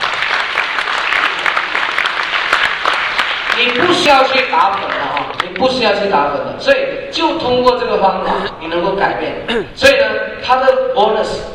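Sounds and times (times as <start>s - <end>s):
audience applause at a speech: 0.0s - 5.5s
speech: 3.6s - 11.5s.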